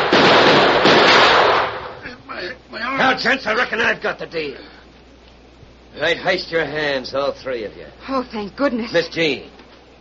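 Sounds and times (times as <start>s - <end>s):
gunshot in a radio drama western showdown: 0.0s - 2.0s
speech: 3.2s - 4.8s, 5.9s - 9.6s.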